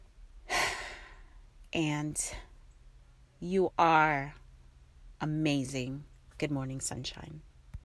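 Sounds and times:
deep breath: 0.5s - 1.4s
speech: 1.7s - 2.5s, 3.4s - 4.4s, 5.2s - 7.5s.

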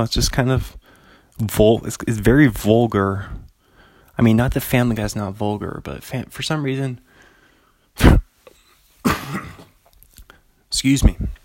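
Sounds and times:
speech: 0.0s - 0.8s, 1.4s - 3.4s, 4.2s - 7.1s, 8.0s - 8.2s, 10.8s - 11.4s
throat clearing: 8.0s - 8.3s, 9.0s - 9.8s.

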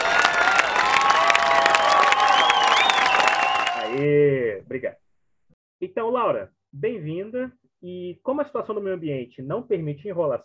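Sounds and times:
crowd applauding to welcome a guest: 0.0s - 4.1s
crowd whoops and shouts: 0.0s - 4.1s
speech: 4.7s - 5.0s, 5.8s - 10.4s.

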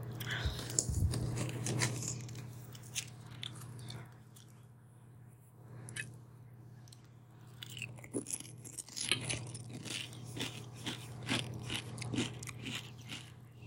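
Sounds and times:
crunchy biting and chewing while eating with hot salsa: 0.2s - 4.7s, 6.8s - 13.6s.

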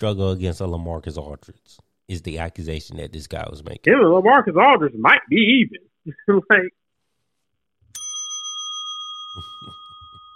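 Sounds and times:
speech: 0.0s - 6.8s
single sharp bell strike ringing with a metallic tone: 8.0s - 10.3s.

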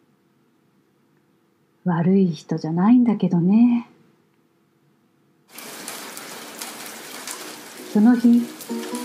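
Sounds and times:
speech: 1.8s - 3.9s, 8.0s - 9.0s
steady rain: 5.5s - 9.0s.

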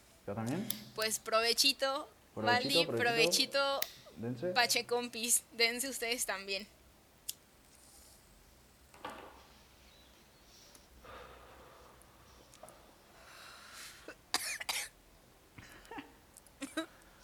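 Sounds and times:
low hum: 0.0s - 17.2s
speech: 0.3s - 6.8s
person coughing after smoking a pipe: 14.1s - 14.9s.

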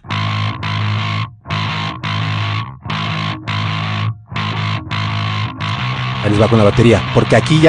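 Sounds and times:
heavily distorted bass guitar playing in gritty bursts: 0.0s - 7.6s
speech: 6.3s - 7.6s.

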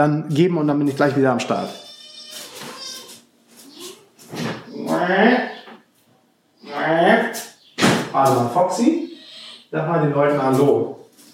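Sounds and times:
speech: 0.0s - 1.8s, 5.1s - 5.5s, 8.2s - 11.0s
small cat meowing: 1.5s - 4.0s, 9.1s - 9.7s.

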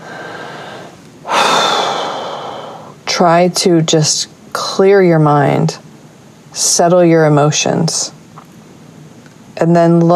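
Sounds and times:
deep breath: 0.0s - 3.0s
speech: 3.2s - 5.8s, 6.6s - 8.2s, 9.6s - 10.1s.

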